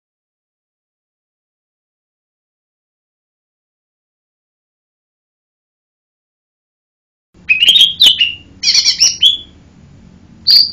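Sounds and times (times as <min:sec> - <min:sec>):
lesser green leafbird giving rising whistled notes and a buzzy note: 0:07.5 - 0:09.6, 0:10.5 - 0:10.7.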